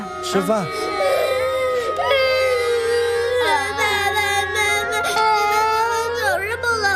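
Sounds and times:
children crying at a family mealtime during the New Year holiday: 0:00.0 - 0:06.9
speech: 0:00.2 - 0:00.9.

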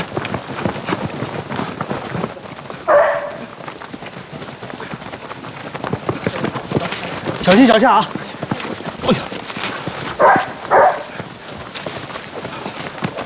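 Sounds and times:
rapid footsteps: 0:00.0 - 0:13.2
dog barking: 0:02.9 - 0:03.5, 0:10.2 - 0:11.2
speech: 0:07.5 - 0:08.2, 0:09.1 - 0:09.4.

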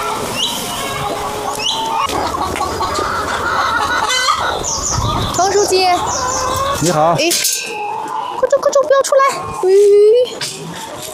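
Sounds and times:
roosters crowing: 0:00.0 - 0:08.4
many chickens clucking and squawking: 0:00.0 - 0:11.1
speech: 0:05.7 - 0:07.5, 0:09.0 - 0:10.5.

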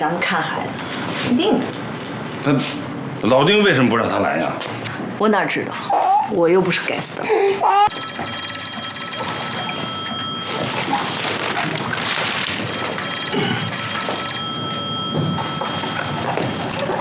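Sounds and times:
speech: 0:00.0 - 0:01.8, 0:02.4 - 0:08.5
busy background of room noise and faint movement: 0:00.0 - 0:16.9
telephone bell ringing: 0:07.9 - 0:16.9.

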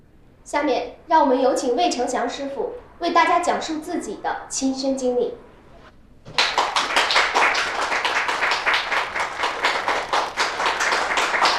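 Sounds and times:
speech: 0:00.5 - 0:05.5
crowd applause: 0:06.3 - 0:11.5.

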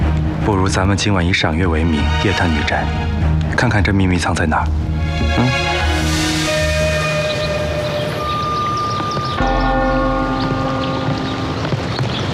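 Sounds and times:
speech: 0:00.5 - 0:05.6
large bell of an old temple tolling for noon: 0:06.5 - 0:12.3.

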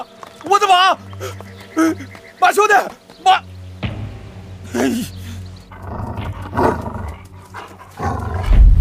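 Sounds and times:
speech: 0:00.5 - 0:03.5, 0:04.7 - 0:05.1
wolf growling and snarling: 0:04.7 - 0:08.7.

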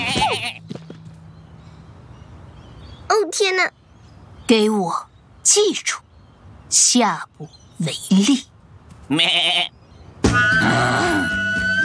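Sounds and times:
sheep bleating: 0:00.0 - 0:00.6, 0:09.1 - 0:09.7
speech: 0:03.2 - 0:03.8, 0:04.5 - 0:06.0, 0:06.7 - 0:08.5, 0:09.1 - 0:11.4.

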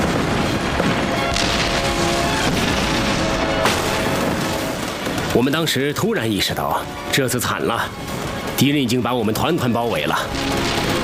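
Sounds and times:
sharp booming artillery blasts: 0:00.0 - 0:05.8, 0:10.2 - 0:11.0
dense continuous roar of battlefield gunfire: 0:00.0 - 0:07.0, 0:07.8 - 0:11.0
speech: 0:05.4 - 0:10.9.

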